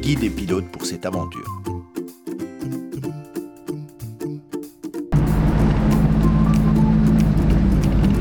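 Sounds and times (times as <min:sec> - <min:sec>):
speech: 0:00.0 - 0:01.8
music: 0:00.0 - 0:08.2
vintage Citroën Traction 11 car engine climbing a forest road up a hill: 0:05.2 - 0:08.2.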